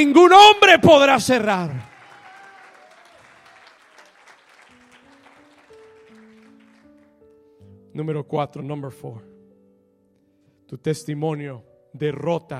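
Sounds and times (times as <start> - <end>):
speech: 0.0 - 1.9, 8.0 - 9.3, 10.7 - 12.5
large church audience applauding: 0.9 - 7.2.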